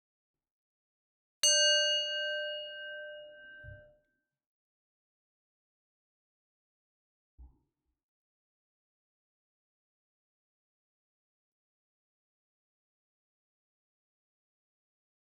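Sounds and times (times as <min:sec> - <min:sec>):
single bell struck ringing: 0:01.4 - 0:03.8.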